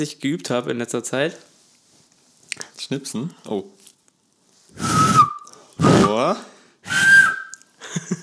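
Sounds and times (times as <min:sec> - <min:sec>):
speech: 0:00.0 - 0:01.5, 0:02.6 - 0:03.8, 0:06.1 - 0:06.5
loud piercing two-finger whistle: 0:04.8 - 0:07.7
laughter: 0:07.8 - 0:08.2.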